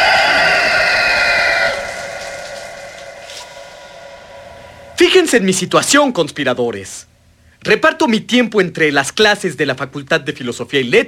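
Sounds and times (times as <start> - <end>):
rooster crowing: 0.0 - 5.3
speech: 5.2 - 11.0.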